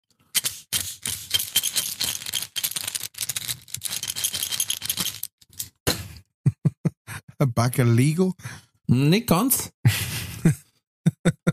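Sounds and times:
tin of throat lozenges shaken and rattling: 0.4s - 5.6s
speech: 7.4s - 10.6s
laughter: 9.9s - 11.5s.

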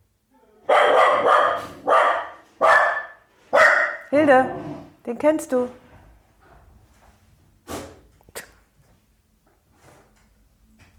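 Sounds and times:
dog barking at a man arriving home: 0.6s - 4.1s
speech: 4.1s - 5.8s.

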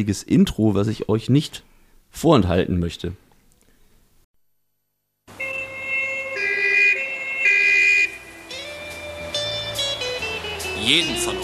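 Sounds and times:
speech: 0.0s - 3.2s, 10.9s - 11.4s
ambulance siren wailing: 5.3s - 11.4s.

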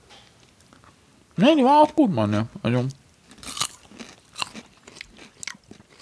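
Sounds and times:
speech: 1.4s - 3.0s
sharp crunchy bites: 3.3s - 5.9s
wet chewing and lip-smacking while eating sausages: 3.4s - 5.9s.

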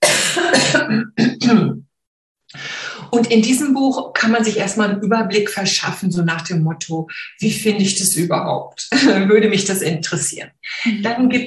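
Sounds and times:
loud rasping and sharp coughing: 0.0s - 1.8s
speech: 3.1s - 11.4s.

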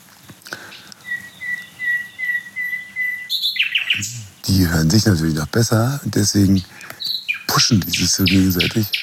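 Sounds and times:
several songbirds singing at once: 0.2s - 9.0s
bright bird chirps: 0.7s - 4.5s, 6.9s - 9.0s
speech: 4.0s - 6.8s, 7.6s - 9.0s.

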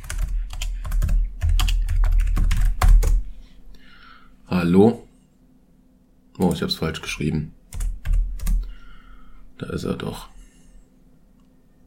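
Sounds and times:
computer keyboard typing a search: 0.0s - 3.2s, 7.7s - 8.7s
speech: 4.5s - 5.0s, 6.4s - 7.6s, 9.6s - 10.3s.

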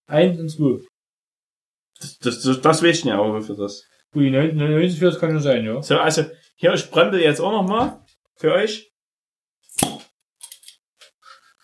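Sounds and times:
speech: 0.1s - 0.9s, 2.0s - 8.9s
bottle cap clicking open: 9.8s - 10.6s.

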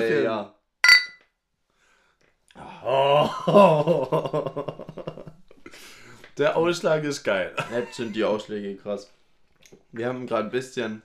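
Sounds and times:
glasses clinking in a toast: 0.8s - 1.2s
speech: 2.8s - 4.9s, 5.7s - 11.0s
laughter: 3.2s - 5.4s, 7.6s - 8.4s.

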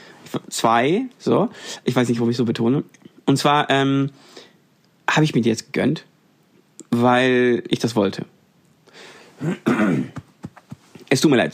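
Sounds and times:
speech: 0.6s - 4.5s, 5.1s - 6.1s, 7.0s - 8.3s, 9.4s - 10.3s, 11.1s - 11.5s
harsh cough: 9.4s - 10.4s
throat clearing: 9.4s - 10.4s.

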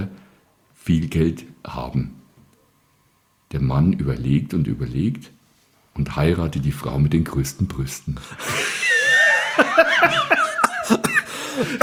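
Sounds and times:
speech: 0.8s - 2.2s, 3.5s - 5.4s, 6.0s - 8.8s, 9.6s - 11.8s
person coughing: 8.4s - 11.8s
person laughing: 8.4s - 11.8s.

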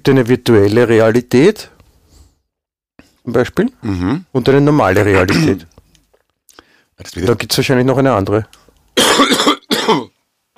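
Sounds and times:
speech: 0.0s - 1.7s, 3.2s - 5.7s, 7.0s - 10.2s
raspy coughing fits from a person who has been smoking too much: 5.1s - 5.7s, 9.0s - 10.5s.

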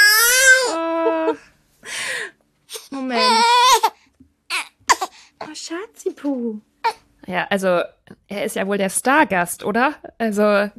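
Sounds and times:
newborn baby crying: 0.0s - 1.4s, 2.7s - 5.2s
speech: 6.2s - 10.7s.

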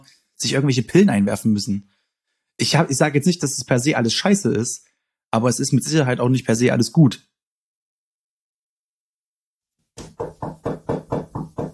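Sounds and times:
speech: 0.0s - 2.0s, 2.6s - 7.3s
loud sharp resonant knocking: 10.0s - 11.7s.

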